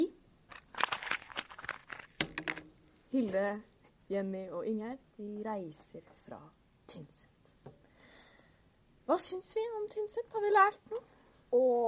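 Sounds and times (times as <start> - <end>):
paper being crumpled up and thrown in Tynset municipality Norway: 0.5 - 2.6
speech: 3.1 - 7.3, 9.1 - 11.8.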